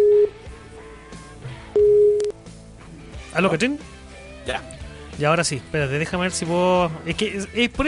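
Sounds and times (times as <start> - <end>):
telephone call tone while dialing out into a conference call: 0.0 - 0.4, 1.8 - 2.3
speech: 3.4 - 7.8.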